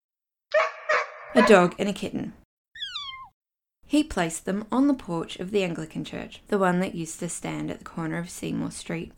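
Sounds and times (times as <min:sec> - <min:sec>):
dog barking: 0:00.5 - 0:01.7
speech: 0:01.4 - 0:02.4, 0:03.9 - 0:09.1
thin high-pitched cry: 0:02.8 - 0:03.3.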